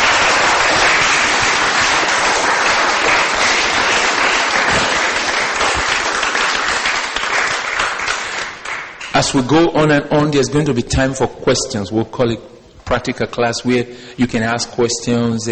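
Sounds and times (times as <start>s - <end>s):
audience clapping at a Christian worship gathering: 0.0s - 9.5s
speech: 9.2s - 15.4s.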